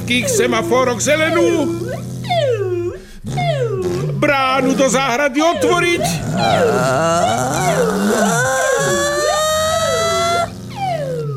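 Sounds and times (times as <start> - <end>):
ambulance siren wailing: 0.0 - 4.0, 5.4 - 11.3
speech: 0.1 - 2.5, 3.3 - 8.6.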